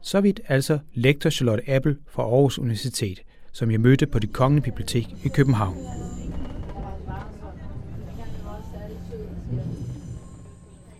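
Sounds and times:
speech: 0:00.0 - 0:06.2
moving train rumble heard from inside a carriage: 0:03.6 - 0:10.9
faint indistinct voices murmuring: 0:04.1 - 0:10.9.

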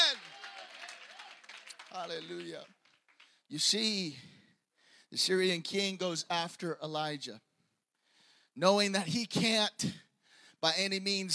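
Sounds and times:
congregation clapping hands in applause: 0:00.0 - 0:03.8
speech: 0:02.0 - 0:02.8, 0:03.5 - 0:04.4, 0:05.1 - 0:07.5, 0:08.6 - 0:10.0, 0:10.6 - 0:11.3.

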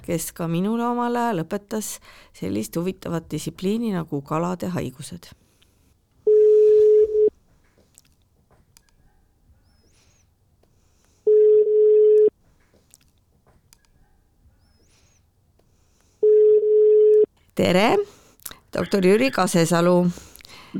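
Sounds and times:
speech: 0:00.0 - 0:05.4, 0:17.6 - 0:18.2, 0:18.8 - 0:20.7
phone line ringback tone while placing a call to a doctor: 0:06.3 - 0:07.3, 0:11.3 - 0:12.3, 0:16.2 - 0:17.3.

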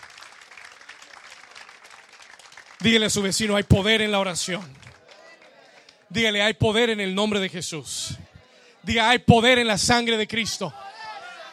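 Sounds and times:
church audience applauding: 0:00.0 - 0:06.4
speech: 0:02.8 - 0:04.9, 0:06.1 - 0:08.2, 0:08.8 - 0:10.8.

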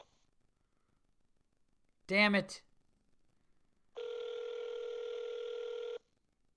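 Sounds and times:
speech: 0:02.1 - 0:02.7
ringing tone of an outgoing phone call: 0:04.0 - 0:06.1.

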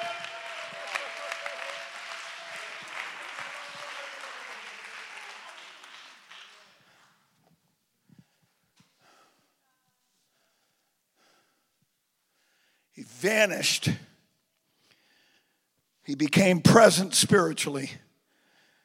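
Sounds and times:
audience clapping: 0:00.0 - 0:07.3
speech: 0:13.2 - 0:14.1, 0:16.1 - 0:18.1.

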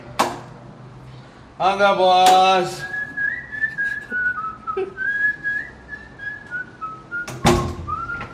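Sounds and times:
speech: 0:01.6 - 0:03.0
person whistling a clear wandering tune: 0:02.8 - 0:08.3.

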